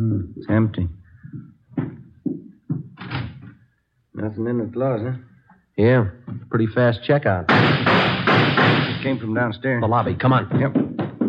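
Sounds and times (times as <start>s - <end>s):
speech: 0.0s - 1.4s, 4.2s - 10.9s
door being pushed open with dull wooden thuds and knocks: 7.5s - 9.1s, 10.0s - 11.2s.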